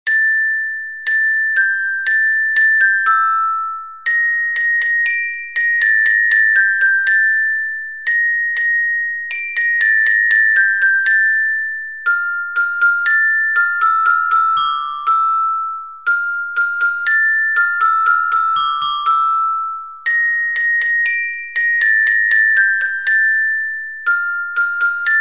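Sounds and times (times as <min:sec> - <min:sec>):
music box melody: 0:00.1 - 0:25.1.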